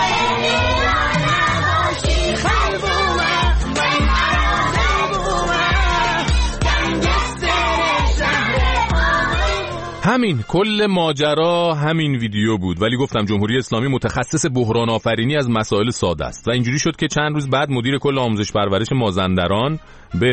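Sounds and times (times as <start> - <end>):
classroom of children singing loudly together: 0.0 - 10.0
played song with a steady thumping beat: 0.0 - 10.0
speech: 10.2 - 20.3.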